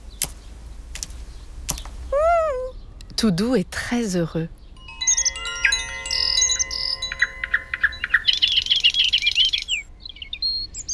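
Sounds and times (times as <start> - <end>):
small bird pecking at seeds: 0.1 - 2.1
speech: 3.2 - 4.6
small bird bright chirping whistle: 5.0 - 10.9.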